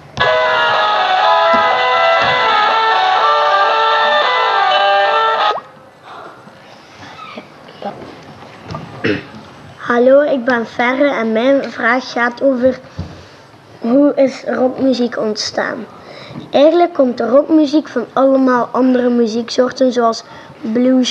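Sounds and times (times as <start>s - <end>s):
electronic keyboard playing a bright melody: 0.2s - 5.7s
speech: 10.0s - 13.0s, 13.8s - 21.0s.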